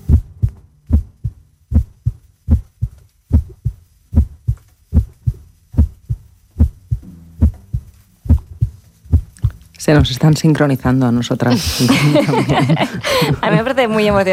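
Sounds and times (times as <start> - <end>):
recorded human heartbeats from a sound archive: 0.0 - 10.2
speech: 9.9 - 14.3
laughter: 11.5 - 14.3.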